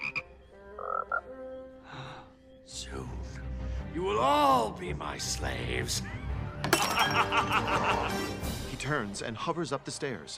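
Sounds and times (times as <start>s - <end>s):
toads croaking: 0.0s - 1.4s
speech: 4.2s - 6.2s, 7.1s - 10.3s
laughter: 6.8s - 8.4s.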